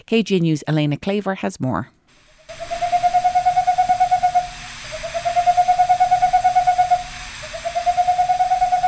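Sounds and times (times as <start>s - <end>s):
speech: 0.0s - 2.0s
faint steady hum: 1.9s - 8.8s
boreal owl calling in trills of soft whistled hoots: 2.3s - 8.8s.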